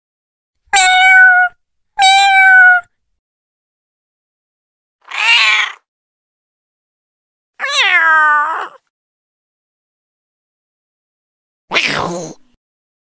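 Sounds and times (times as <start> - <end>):
cat meowing: 0.7 - 2.9, 5.0 - 5.9, 7.6 - 8.8.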